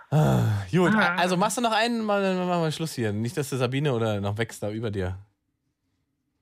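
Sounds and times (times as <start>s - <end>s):
person making rough pig-like grunts: 0.1s - 1.1s
speech: 0.1s - 5.3s.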